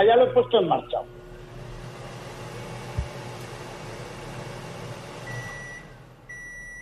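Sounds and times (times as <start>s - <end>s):
speech: 0.0s - 1.2s
steady electronic beep from an oscilloscope: 5.3s - 6.8s.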